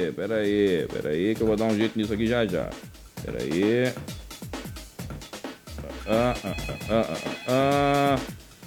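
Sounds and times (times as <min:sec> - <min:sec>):
speech: 0:00.0 - 0:04.2, 0:06.1 - 0:08.4
voice imitating a buzzy telephone ring: 0:05.9 - 0:08.3.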